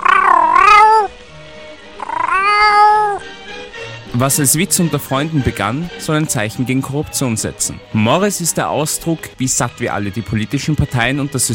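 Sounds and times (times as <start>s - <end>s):
cat meowing with long drawn-out calls: 0.0s - 1.2s, 2.0s - 3.2s
speech: 4.2s - 11.5s.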